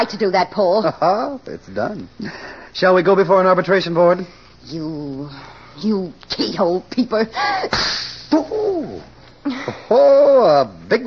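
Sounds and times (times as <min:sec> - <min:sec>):
speech: 0:00.0 - 0:11.0
woman slapping a guest in the face: 0:07.7 - 0:08.4.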